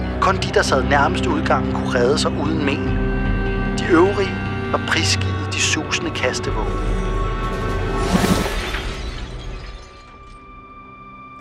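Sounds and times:
speech: 0:00.2 - 0:03.0, 0:03.8 - 0:07.1, 0:08.1 - 0:08.4
glass shards from chandeliers and a mirror shattering in a bar brawl: 0:08.0 - 0:10.7
falling glass shards tinkling: 0:08.4 - 0:10.6.

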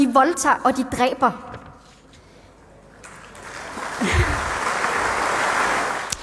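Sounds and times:
speech: 0:00.1 - 0:01.5
audience applause after a speech: 0:03.0 - 0:06.2.

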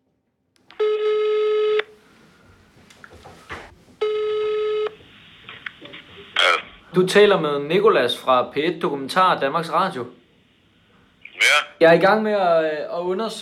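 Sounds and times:
ringback tones on a phone line while calling a man: 0:00.8 - 0:01.9, 0:04.0 - 0:05.0
speech: 0:07.0 - 0:10.2, 0:11.8 - 0:13.4.

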